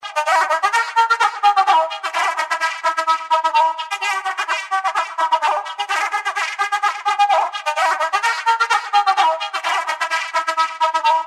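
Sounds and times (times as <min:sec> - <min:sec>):
electronic flute: 0:00.0 - 0:11.2.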